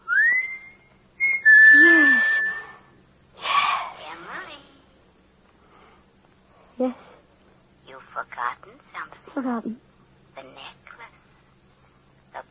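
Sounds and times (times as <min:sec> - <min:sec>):
man whistling a signal: 0:00.0 - 0:02.9
speech: 0:08.6 - 0:10.8.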